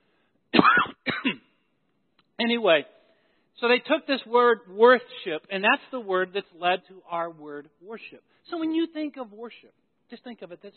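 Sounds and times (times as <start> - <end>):
person clearing throat from a popcorn husk stuck in throat: 0.6 - 1.5
speech: 2.4 - 3.0, 3.6 - 10.7.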